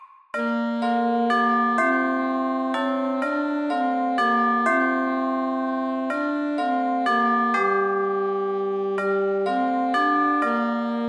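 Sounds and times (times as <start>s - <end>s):
bell ringing: 0.4s - 10.9s.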